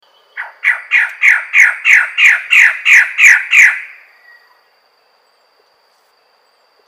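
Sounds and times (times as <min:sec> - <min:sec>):
magnificent bird-of-paradise Cicinnurus magnificus calling: 0:00.2 - 0:04.6.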